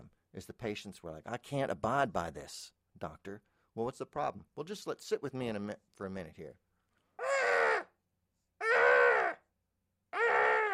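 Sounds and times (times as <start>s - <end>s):
speech: 0.4s - 6.6s
voice imitating a muffled baboon scream: 7.2s - 8.0s, 8.6s - 9.5s, 10.1s - 10.7s.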